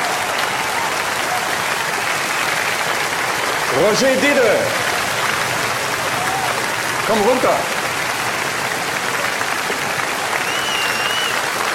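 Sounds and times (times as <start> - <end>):
audience clapping: 0.0 - 11.7
speech: 3.7 - 4.9, 7.1 - 7.7
whistle: 10.4 - 11.4.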